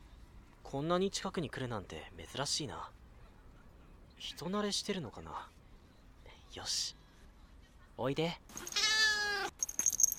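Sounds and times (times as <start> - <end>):
speech: 0.7 - 3.0, 4.2 - 5.6, 6.5 - 7.0, 8.0 - 8.8
calico cat meowing: 8.6 - 9.5.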